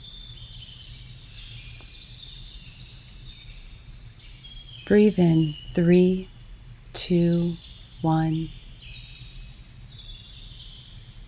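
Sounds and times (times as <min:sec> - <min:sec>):
faint birds chirping in a high chorus: 0:02.2 - 0:11.2
steady low outdoor hum: 0:04.0 - 0:08.5
speech: 0:04.9 - 0:06.3, 0:07.0 - 0:08.6.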